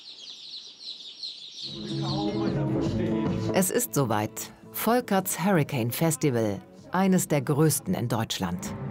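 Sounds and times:
chicks cheeping: 0:00.0 - 0:03.0
speech: 0:02.7 - 0:08.8.

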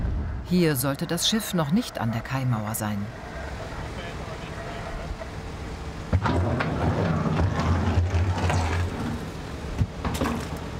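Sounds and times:
deep low engine rumble: 0:00.0 - 0:10.0
strong storm wind roaring across a harbour: 0:00.0 - 0:10.0
speech: 0:00.5 - 0:03.3.

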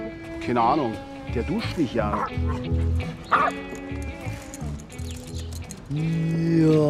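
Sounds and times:
speech: 0:00.4 - 0:04.2, 0:05.9 - 0:06.8
dog barking and yipping: 0:02.1 - 0:03.7.

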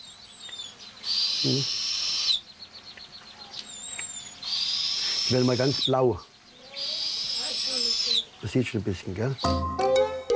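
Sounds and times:
faint high bird chirps: 0:00.0 - 0:08.7
young eagle-owl hissing screech: 0:01.0 - 0:02.4, 0:03.7 - 0:06.0, 0:06.7 - 0:08.3
speech: 0:01.4 - 0:01.8, 0:05.3 - 0:06.3, 0:08.4 - 0:09.8.

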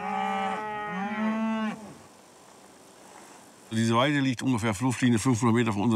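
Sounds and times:
Longhorn cow mooing on a farm pasture: 0:00.0 - 0:02.0
speech: 0:03.7 - 0:05.9.

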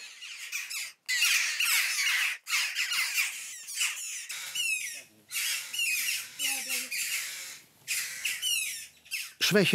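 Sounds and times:
hungry common buzzard chick squawking: 0:00.0 - 0:09.6.

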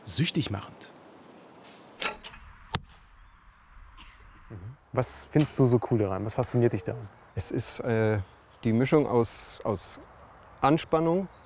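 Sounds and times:
speech: 0:00.1 - 0:00.9, 0:05.0 - 0:11.4
bow snapping as arrow leaves: 0:01.6 - 0:03.0
arrow hitting target: 0:01.6 - 0:03.2
arrow whooshing: 0:01.6 - 0:04.5.

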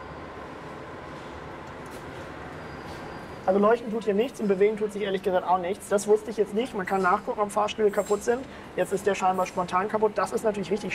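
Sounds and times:
subway train rumbling through an underground station: 0:00.0 - 0:10.9
speech: 0:03.5 - 0:10.9.

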